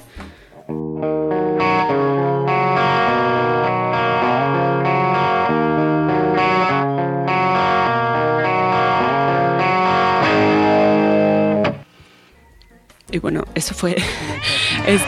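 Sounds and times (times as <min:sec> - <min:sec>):
overdriven electric guitar strumming chords through a mid-1970s Orange OR120 amplifier: 0:00.6 - 0:11.9
speech: 0:01.0 - 0:01.4, 0:13.2 - 0:15.0
laughter: 0:14.0 - 0:15.0.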